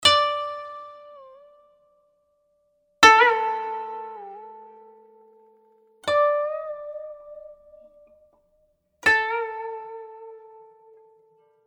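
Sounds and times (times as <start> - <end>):
koto playing: 0.0 - 1.5, 3.0 - 5.0, 6.0 - 7.9, 9.0 - 11.1.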